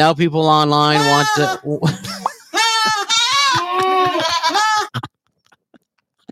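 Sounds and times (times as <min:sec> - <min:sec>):
speech: 0:00.0 - 0:02.1
goat bleating: 0:00.9 - 0:01.8, 0:02.4 - 0:05.1
laughter: 0:01.0 - 0:06.3.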